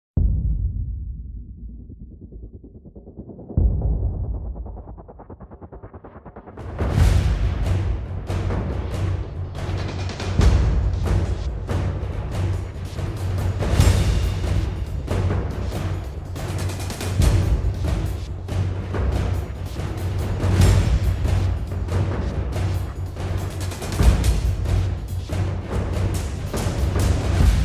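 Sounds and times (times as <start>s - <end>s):
epic action percussion build: 0.2s - 27.6s.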